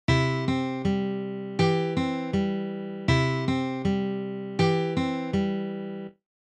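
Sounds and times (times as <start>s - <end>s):
arpeggios: 0.1s - 6.2s.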